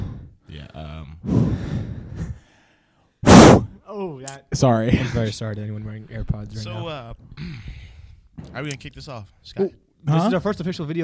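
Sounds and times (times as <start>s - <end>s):
heavy rough breathing after running: 0.0s - 0.5s, 1.2s - 3.7s, 7.4s - 8.3s
speech: 3.9s - 7.8s, 8.4s - 11.0s.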